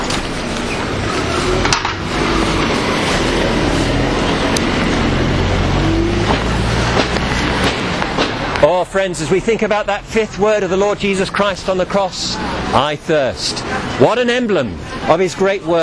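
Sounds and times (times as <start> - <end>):
bus passing on the road: 0.0 - 15.8
speech: 9.0 - 15.8.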